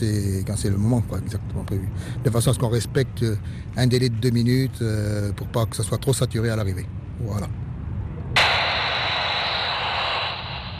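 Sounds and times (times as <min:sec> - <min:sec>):
speech: 0:00.0 - 0:07.6
aircraft engine drone: 0:08.4 - 0:10.7
radio static hiss: 0:08.4 - 0:10.7.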